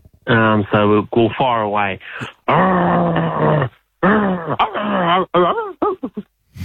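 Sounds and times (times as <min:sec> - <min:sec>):
speech: 0:00.3 - 0:02.7
person imitating a growling dog: 0:02.5 - 0:06.2.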